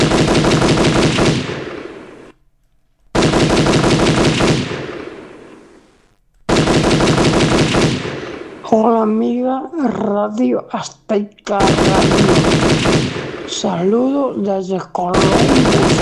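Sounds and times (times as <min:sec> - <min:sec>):
rapid gunfire bursts: 0:00.0 - 0:02.3, 0:03.1 - 0:05.5, 0:06.5 - 0:08.7, 0:11.6 - 0:14.0, 0:15.1 - 0:15.9
speech: 0:09.0 - 0:12.7, 0:13.5 - 0:15.9.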